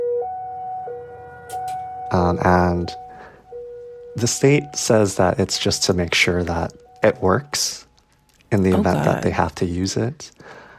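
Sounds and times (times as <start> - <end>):
Cold War era civil defense siren blaring in two pitches: 0.0 - 4.2
speech: 2.1 - 3.0, 4.2 - 7.8, 8.5 - 10.6
faint noise: 6.5 - 10.7.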